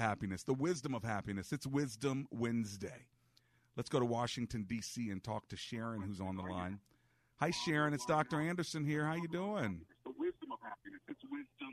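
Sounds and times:
speech: 0.0 - 3.2, 3.8 - 10.0
broadcast voice playing from a caller's radio over a phone line: 7.4 - 11.7.

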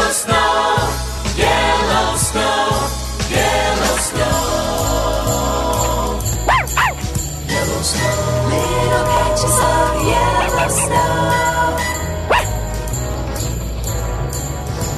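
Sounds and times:
bright jingly musical backing with tinkling bells: 0.2 - 14.9
man imitating a dog with short barks and yips: 6.5 - 7.0, 10.4 - 11.0, 12.3 - 12.6.

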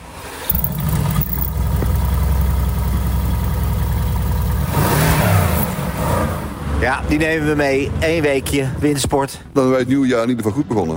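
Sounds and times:
car engine starting and revving: 0.2 - 8.4
speech: 7.1 - 10.9.

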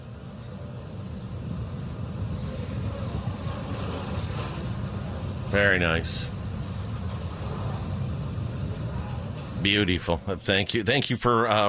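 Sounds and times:
rocket's nine Merlin 1D engines roaring at full thrust in flight: 0.0 - 11.1
speech: 5.5 - 6.4, 9.6 - 11.6.

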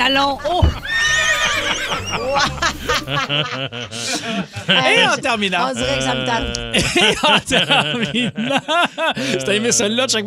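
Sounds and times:
laughter: 0.0 - 10.2
speech: 0.0 - 10.2
horse neighing: 0.6 - 2.6.

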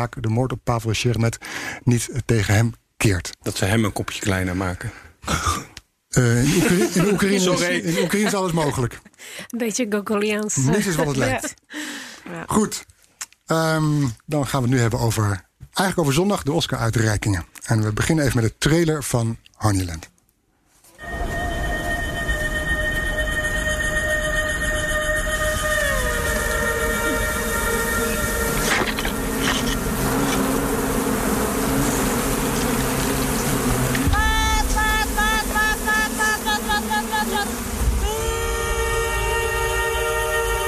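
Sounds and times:
speech: 0.0 - 12.9, 13.5 - 20.1
laughter: 6.2 - 9.2, 10.6 - 11.6, 34.8 - 37.6
many bees buzzing in a film trailer: 21.0 - 40.6.

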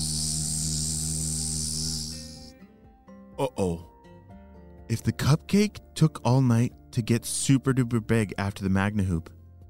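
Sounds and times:
loud steady buzzing: 0.0 - 2.5
speech: 3.4 - 3.9, 4.9 - 9.4.

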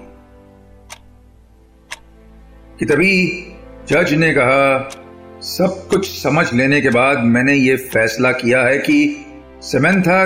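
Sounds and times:
large clock ticking in a courtroom: 0.8 - 2.2, 2.9 - 9.3
speech: 2.8 - 10.2.

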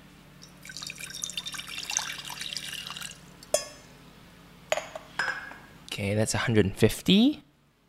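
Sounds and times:
water pouring in a trickling stream: 0.4 - 3.3
speech: 6.0 - 7.5.

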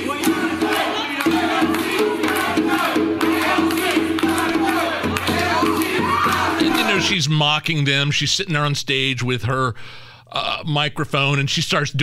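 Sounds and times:
scattered clapping: 0.0 - 7.0
people shouting: 0.0 - 7.2
rowdy crowd of protesters chanting in unison in the Bronx: 0.0 - 7.2
speech: 7.1 - 12.0.

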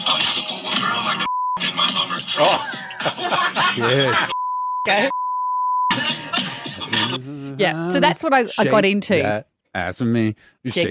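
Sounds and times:
loud music with explicitly worded singing: 0.0 - 3.2, 5.9 - 7.3
speech: 1.8 - 5.2, 6.0 - 10.9
laughter: 2.4 - 4.4.

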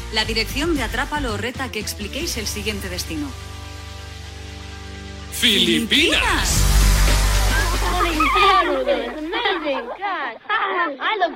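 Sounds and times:
speech: 0.1 - 3.6, 5.4 - 7.2, 7.8 - 11.3
rushing, splashing water: 6.2 - 10.2
children laughing and shouting while playing in water: 7.3 - 11.3.

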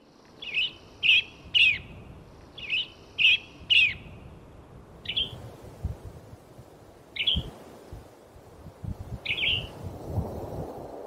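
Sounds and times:
male western tanager calling: 0.4 - 4.3, 5.0 - 5.4, 7.2 - 7.5, 9.2 - 9.7.

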